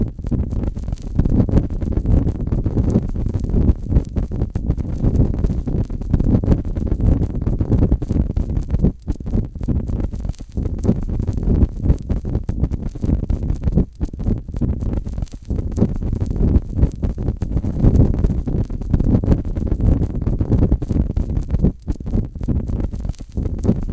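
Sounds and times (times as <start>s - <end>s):
fire burning with a soft dense rumble: 0.0s - 23.9s.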